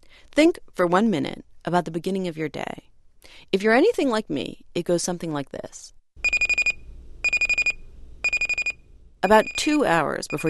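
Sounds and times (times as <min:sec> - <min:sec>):
speech: 0:00.4 - 0:06.0, 0:09.2 - 0:10.4
alarm clock beeping: 0:06.2 - 0:10.4.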